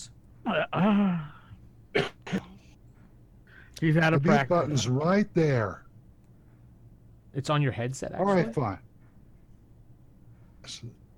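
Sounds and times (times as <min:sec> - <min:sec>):
speech: 0:00.4 - 0:01.3, 0:03.8 - 0:05.8, 0:07.4 - 0:08.9, 0:10.6 - 0:11.0
person coughing: 0:00.5 - 0:02.6
throat clearing: 0:00.5 - 0:02.6.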